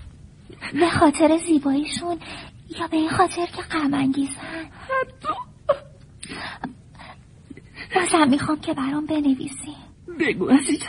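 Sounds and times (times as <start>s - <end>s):
speech: 0.6s - 5.8s, 7.9s - 10.8s
woman whimpering and wailing: 4.9s - 6.0s.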